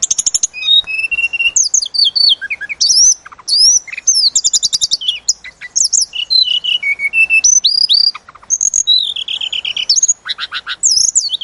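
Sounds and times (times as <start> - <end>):
Sunda robin song: 0.0 - 11.4.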